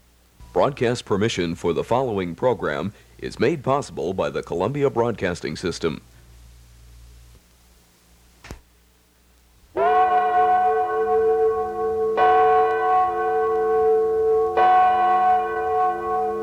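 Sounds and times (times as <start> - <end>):
speech: 0.6 - 6.1
Liberty Bell ringing: 9.8 - 16.4.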